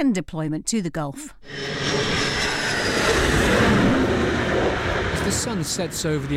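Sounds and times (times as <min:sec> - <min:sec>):
speech: 0:00.0 - 0:02.2, 0:05.2 - 0:06.3
navy jet landing on aircraft carrier: 0:01.4 - 0:06.3.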